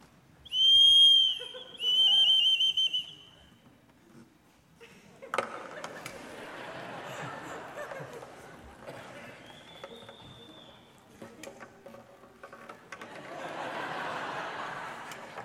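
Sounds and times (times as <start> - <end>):
whistle imitating a bird mating call: 0.5 - 3.4
laughter: 1.3 - 2.5, 4.8 - 10.5, 12.9 - 15.4.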